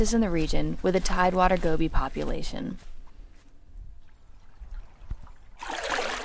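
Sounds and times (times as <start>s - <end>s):
speech: 0.0s - 2.9s
seine net pulled through shallow wetland water: 4.0s - 6.2s
loud broad rush of splashing water: 5.6s - 6.2s.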